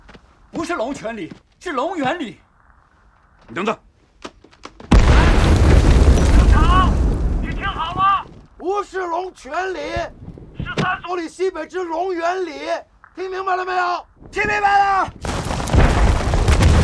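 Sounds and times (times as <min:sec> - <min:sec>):
speech: 0:00.6 - 0:02.4, 0:03.5 - 0:03.8, 0:08.6 - 0:10.2, 0:10.8 - 0:15.3
artillery fire booming: 0:04.9 - 0:08.4, 0:15.2 - 0:16.8.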